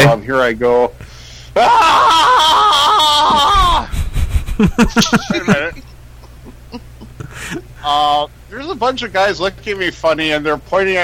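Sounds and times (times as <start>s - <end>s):
speech: 0.0s - 1.0s, 1.6s - 2.6s, 4.6s - 5.9s, 7.8s - 11.0s
man making choppy breathy bursts: 1.0s - 1.6s, 3.8s - 4.6s, 7.2s - 7.8s
man doing a loud sustained primal scream: 1.6s - 3.9s
laughter: 1.6s - 7.7s.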